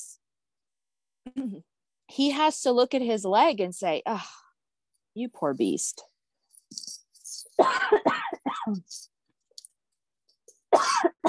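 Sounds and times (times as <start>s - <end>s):
speech: 1.3s - 4.4s, 5.2s - 6.1s, 6.7s - 7.0s, 7.6s - 9.1s
harsh coughing fit: 7.6s - 8.9s, 10.7s - 11.2s.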